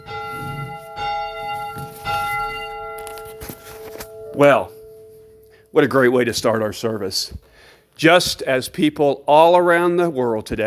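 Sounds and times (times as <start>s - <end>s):
church bell ringing for a Sunday Sabbath service: 0.0s - 7.0s
speech: 4.4s - 4.8s, 5.7s - 10.6s.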